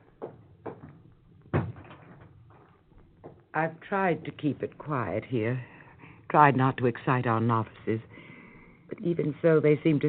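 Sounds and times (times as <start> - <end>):
door shutting thud: 1.5 - 2.3
speech: 3.6 - 5.7, 6.3 - 8.2, 9.0 - 10.0.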